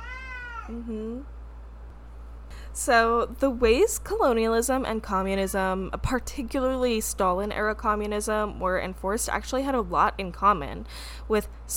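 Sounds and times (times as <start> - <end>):
cat drawn-out meow ending in a rising whine: 0.0 - 0.7
speech: 0.7 - 1.4, 2.8 - 11.7
steady low hum: 0.7 - 11.7.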